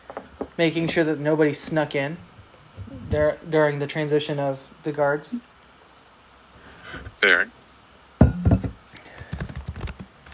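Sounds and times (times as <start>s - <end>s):
speech: 0.6s - 2.3s, 3.1s - 5.5s, 7.2s - 7.6s
typing on a computer keyboard: 9.0s - 10.3s.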